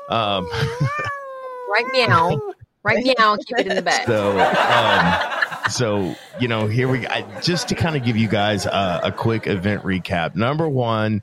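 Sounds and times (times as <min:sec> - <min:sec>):
cat meowing: 0:00.0 - 0:02.6
laughter: 0:00.1 - 0:01.2, 0:02.1 - 0:02.5, 0:03.4 - 0:11.2
speech: 0:00.1 - 0:11.2.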